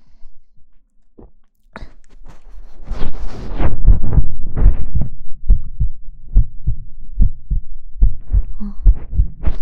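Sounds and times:
fast human heartbeat: 3.1s - 9.5s.

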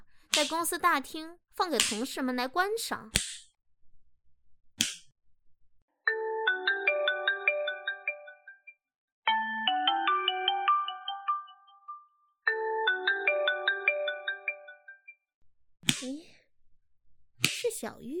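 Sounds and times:
speech: 0.4s - 3.3s
sharp smack: 4.8s - 5.1s, 15.9s - 16.2s
mobile phone ringtone playing a bright electronic melody: 6.1s - 15.1s.

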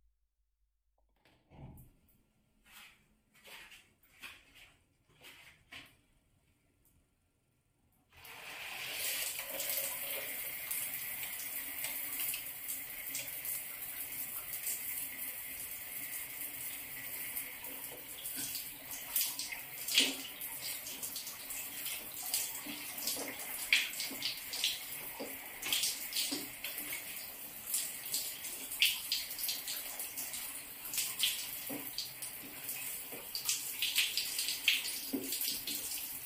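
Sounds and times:
faint knocks and rustles: 1.0s - 6.1s
shower water running: 8.1s - 36.2s.

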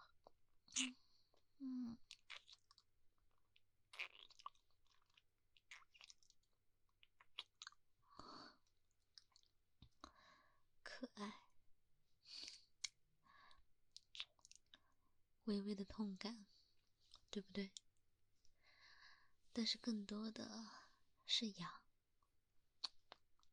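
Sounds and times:
speech: 0.8s - 1.0s, 1.6s - 2.0s, 15.5s - 16.6s, 17.3s - 17.8s, 19.6s - 21.8s
biting and nibbling mouth sounds on soft skin of the inner arm: 2.1s - 2.8s, 3.9s - 6.4s, 7.1s - 7.8s, 22.8s - 23.2s.

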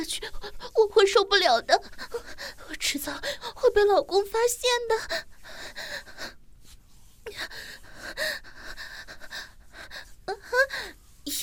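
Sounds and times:
speech: 0.0s - 6.0s
heavy breathy panting: 1.7s - 3.8s, 4.9s - 6.4s, 7.2s - 11.0s.

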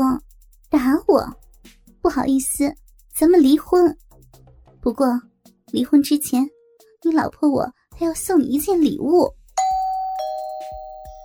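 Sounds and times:
speech: 0.0s - 1.4s, 2.0s - 4.0s, 4.8s - 9.4s
doorbell chiming a bright two-tone ding-dong: 9.6s - 11.2s.

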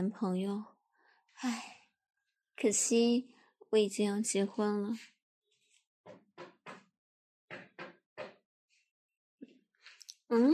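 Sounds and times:
speech: 0.0s - 0.7s, 1.3s - 1.8s, 2.6s - 5.1s, 10.3s - 10.5s
knocking on a door: 6.1s - 6.9s, 7.5s - 8.4s.

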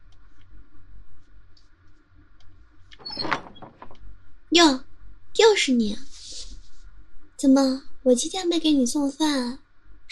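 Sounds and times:
quiet low room rumble: 0.0s - 10.1s
door opening with a short clattering burst: 2.9s - 4.1s
speech: 4.5s - 4.8s, 5.4s - 6.1s, 7.4s - 9.6s.

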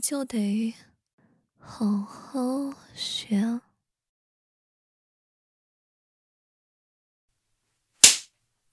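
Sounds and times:
speech: 0.0s - 0.9s, 1.6s - 3.7s
whip crack: 8.0s - 8.3s.

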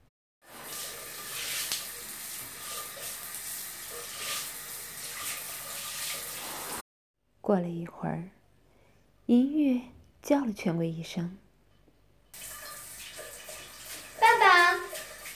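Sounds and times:
water running from a tap or shower in a bathroom: 0.4s - 6.8s, 12.4s - 15.3s
speech: 7.5s - 8.4s, 9.3s - 11.4s.

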